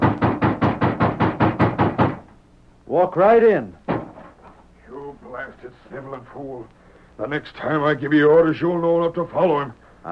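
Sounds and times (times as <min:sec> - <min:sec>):
loud heavy knocking on a wooden door: 0:00.0 - 0:02.3, 0:03.9 - 0:04.4
speech: 0:03.0 - 0:03.8, 0:05.4 - 0:10.0.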